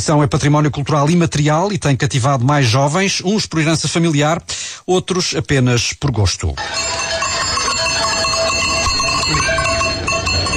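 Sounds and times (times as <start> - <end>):
speech: 0.0 - 7.2
cow bells clanking on a herd driven to pasture: 6.6 - 10.5.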